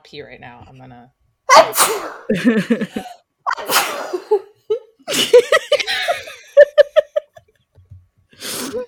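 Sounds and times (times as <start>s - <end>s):
speech: 0.1s - 4.5s
person sneezing: 1.5s - 2.3s, 3.5s - 4.3s
laughter: 2.3s - 3.2s, 4.1s - 7.7s
person gasping: 8.3s - 8.8s.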